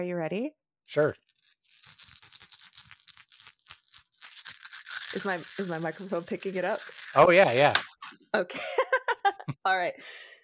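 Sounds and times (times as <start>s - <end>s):
speech: 0.0s - 1.4s, 5.2s - 8.8s, 9.6s - 10.2s
dice being shaken and rattled: 1.3s - 8.3s
person laughing: 8.4s - 9.6s.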